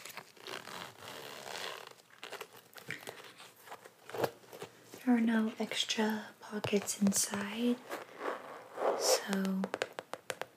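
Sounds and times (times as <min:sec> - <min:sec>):
small bag zipper pulled open and shut: 0:00.4 - 0:02.0, 0:07.8 - 0:09.5
faint rustling: 0:02.8 - 0:09.7
speech: 0:05.1 - 0:08.0, 0:09.3 - 0:09.8.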